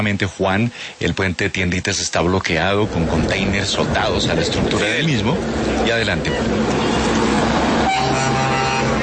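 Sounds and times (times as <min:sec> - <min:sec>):
speech: 0:00.0 - 0:07.0
heavy truck engine rumble: 0:02.5 - 0:09.0
tractor-trailer truck horn blast at an aid convoy near a blocked border bridge: 0:06.8 - 0:09.0.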